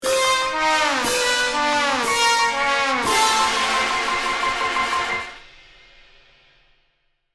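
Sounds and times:
comedy cartoon wah wah wah fail trumpets: 0.0 - 5.4.

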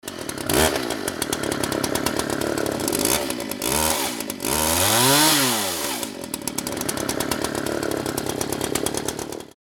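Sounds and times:
chainsaw revving: 0.0 - 9.6.

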